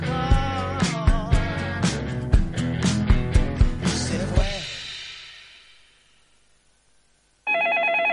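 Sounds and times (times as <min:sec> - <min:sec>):
upbeat music with punchy hits: 0:00.0 - 0:05.6
loud electronic telephone ring from a caller to a radio program: 0:07.4 - 0:08.1.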